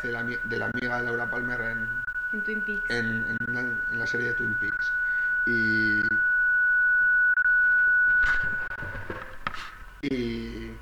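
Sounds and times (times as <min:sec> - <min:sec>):
speech: 0:00.0 - 0:06.3, 0:10.1 - 0:10.8
steady high-pitched electronic beep: 0:00.0 - 0:08.6.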